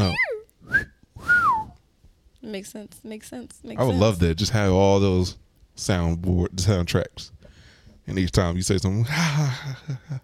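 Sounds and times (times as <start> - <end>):
person whistling two notes: 0.6 - 1.8
speech: 2.5 - 7.4, 8.0 - 10.2.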